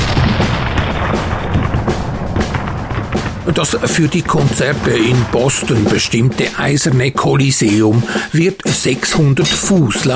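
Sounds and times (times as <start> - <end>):
musket fire in a military music concert: 0.0 - 7.5
cannon thunder in a military music concert: 0.0 - 7.7
speech: 3.5 - 10.1.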